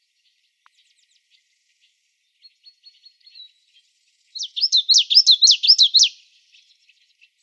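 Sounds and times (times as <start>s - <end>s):
common yellowthroat song recorded in Arizona: 2.5s - 7.4s.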